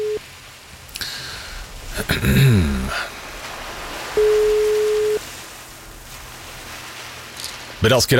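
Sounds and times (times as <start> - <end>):
telephone ringback tone on an outgoing call: 0.0 - 0.2, 4.2 - 5.2
crackly telephone line noise: 0.0 - 8.1
speech: 2.0 - 3.0, 7.8 - 8.1.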